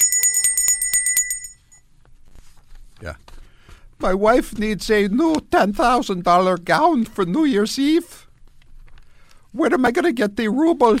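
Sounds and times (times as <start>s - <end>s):
handheld kettle bell ringing: 0.0s - 1.8s
speech: 3.0s - 3.3s, 4.0s - 8.2s, 9.5s - 10.9s.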